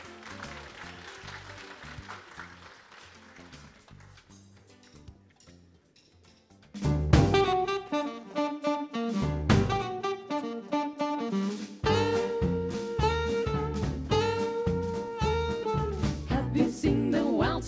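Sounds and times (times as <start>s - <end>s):
louder music: 0.0s - 4.2s, 6.8s - 17.0s
audience applause: 0.0s - 4.4s.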